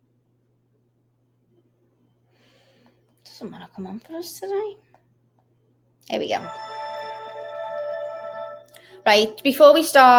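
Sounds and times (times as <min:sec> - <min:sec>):
speech: 0:03.4 - 0:04.9, 0:06.1 - 0:06.7, 0:09.0 - 0:10.1
song played through a small tinny phone speaker: 0:06.4 - 0:09.0.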